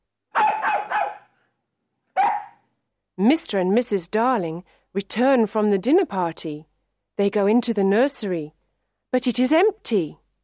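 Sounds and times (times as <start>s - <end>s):
dog barking: 0.3s - 1.4s, 2.2s - 2.6s
speech: 3.2s - 10.2s.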